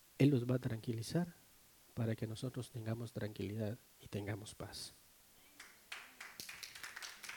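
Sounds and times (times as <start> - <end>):
speech: 0.2 - 1.4, 2.0 - 5.0
church audience applause at a sermon: 5.6 - 7.3.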